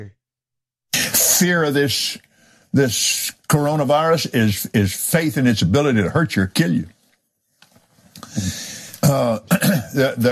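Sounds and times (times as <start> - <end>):
speech: 1.1 - 7.0, 8.4 - 10.3
man clearing his throat: 9.0 - 10.2.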